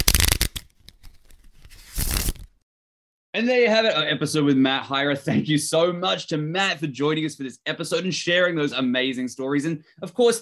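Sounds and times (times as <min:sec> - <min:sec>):
deck of playing cards being shuffled: 0:00.0 - 0:02.6
speech: 0:03.4 - 0:10.3.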